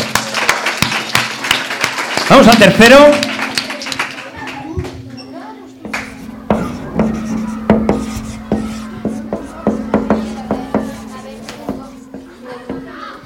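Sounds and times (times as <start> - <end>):
audience applause: 0.0 - 4.8
speech: 2.3 - 3.3
low hum: 5.8 - 13.0
chalk scratching and tapping on a blackboard: 6.0 - 12.8.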